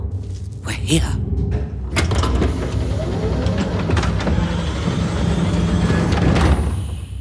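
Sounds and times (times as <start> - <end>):
speech: 0.9 - 1.6
elevator doors sliding open with hissing bursts and clanks: 2.1 - 7.1.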